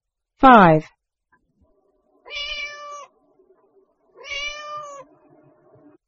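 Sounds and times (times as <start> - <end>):
speech: 0.4 - 1.0
cat meowing: 2.2 - 3.2, 4.2 - 5.1.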